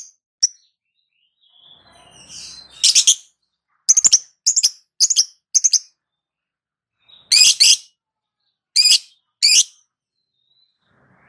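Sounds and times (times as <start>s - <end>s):
lovebird chirps and squawks: 2.3s - 3.2s, 3.9s - 5.8s, 7.2s - 7.9s, 8.8s - 9.8s.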